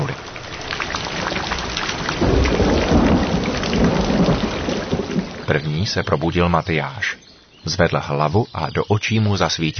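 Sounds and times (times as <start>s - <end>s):
low thunder rumbling: 0.0s - 6.6s
heavy rain drumming on the remains of a roof: 0.0s - 7.1s
speech: 5.6s - 9.7s.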